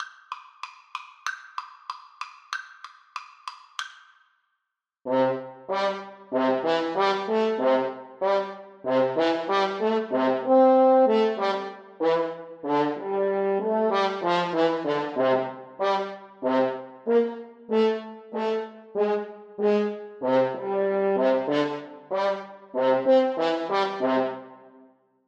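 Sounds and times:
French horn duet: 0:05.1 - 0:24.6.

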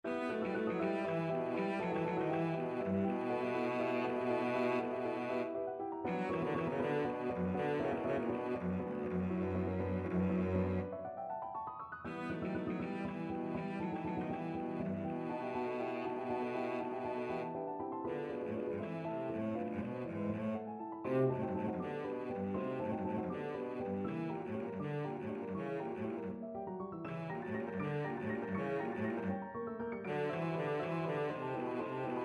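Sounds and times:
cello playing a scherzo: 0:00.0 - 0:11.0, 0:12.1 - 0:32.2.

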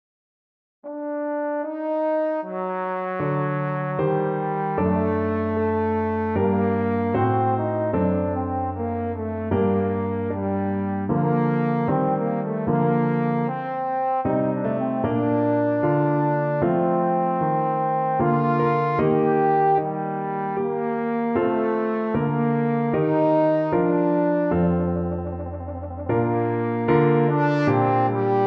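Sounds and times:
trombone playing a sonata: 0:00.9 - 0:28.4.

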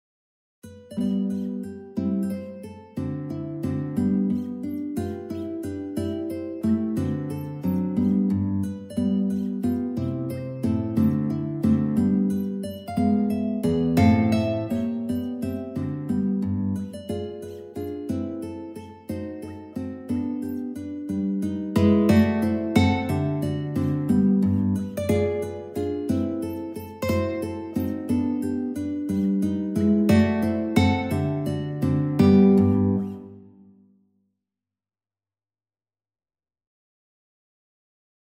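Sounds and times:
guitar prelude: 0:00.6 - 0:33.6.

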